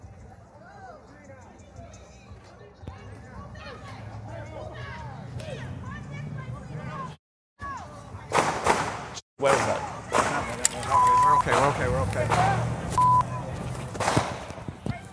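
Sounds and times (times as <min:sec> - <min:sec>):
many people talking: 0:00.0 - 0:15.1
sharp cracking gunshots: 0:08.3 - 0:10.6, 0:14.0 - 0:14.6.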